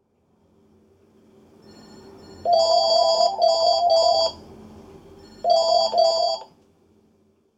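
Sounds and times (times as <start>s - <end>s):
sub bass phone sound: 2.5s - 4.4s, 5.4s - 6.5s.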